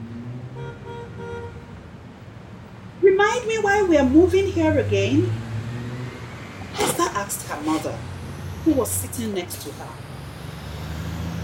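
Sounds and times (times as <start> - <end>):
steady rumble of city traffic: 0.0 - 11.4
short car horn honks: 0.5 - 1.7
speech: 3.2 - 5.4, 7.2 - 10.0.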